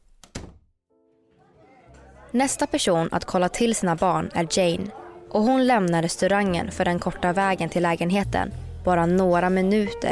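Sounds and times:
bedroom door pushed shut: 0.2s - 0.6s
speech: 2.3s - 10.1s.

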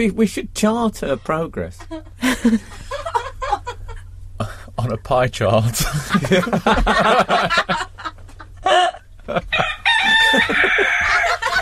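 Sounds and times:
speech: 0.0s - 3.2s, 4.8s - 7.9s
laughter: 1.8s - 4.6s, 5.7s - 11.5s
rooster crowing: 9.3s - 11.5s.

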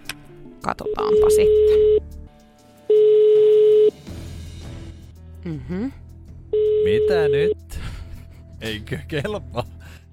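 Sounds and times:
speech: 0.6s - 2.0s, 5.4s - 6.0s, 6.8s - 7.7s, 8.6s - 9.7s
telephone ringing tone on a phone line: 0.9s - 2.0s, 2.9s - 4.0s, 6.6s - 7.1s.

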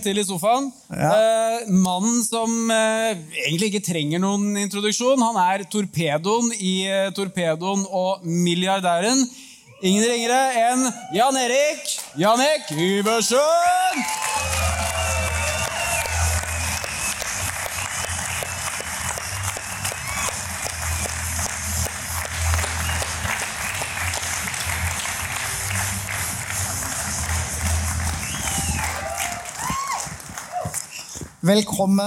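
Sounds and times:
speech: 0.0s - 14.7s, 31.5s - 32.0s
studio audience cheering: 10.8s - 11.6s, 13.4s - 21.3s, 22.5s - 31.0s
studio audience applause: 13.1s - 31.2s.

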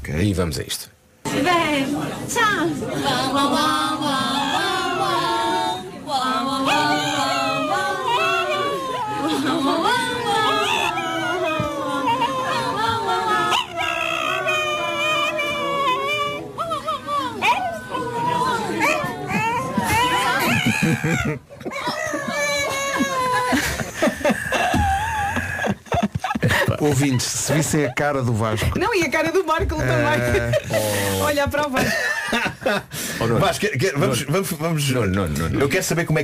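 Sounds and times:
speech: 0.1s - 5.3s, 21.0s - 22.0s, 26.8s - 36.2s
group of people singing a birthday song: 2.7s - 20.4s
laughter: 6.3s - 28.8s, 29.4s - 33.5s
dog howling along to a birthday song: 6.6s - 23.6s.

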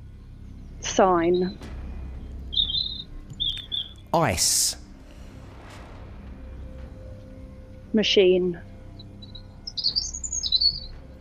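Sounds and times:
speech: 1.0s - 1.7s, 4.1s - 4.8s, 7.9s - 8.7s
birds chirping: 1.2s - 1.6s, 2.4s - 4.8s, 9.0s - 11.0s.

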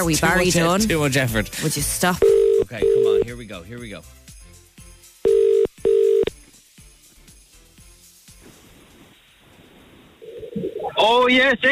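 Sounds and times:
speech: 0.0s - 4.2s, 11.0s - 11.7s
ringback tones from an outgoing phone call: 2.2s - 3.3s, 5.2s - 6.3s.

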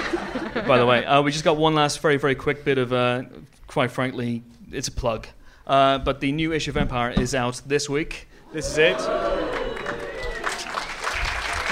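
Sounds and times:
laughter: 0.0s - 1.1s
speech: 0.4s - 9.6s
faint cheers: 8.5s - 11.7s
live audience applause: 8.7s - 11.7s.

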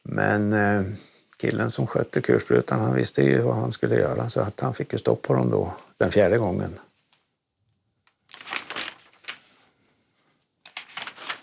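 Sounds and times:
speech: 0.2s - 6.9s
binder pages being turned: 8.1s - 9.8s, 10.6s - 11.4s.

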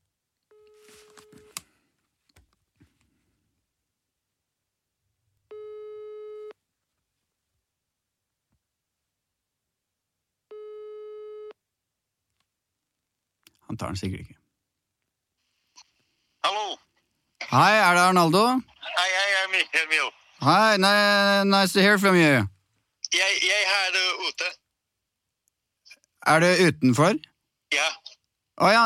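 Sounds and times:
telephone ringback tone while calling: 5.5s - 6.6s, 10.5s - 11.6s
speech: 13.7s - 14.4s, 17.5s - 22.5s, 23.1s - 24.6s, 26.2s - 28.0s, 28.6s - 28.8s.

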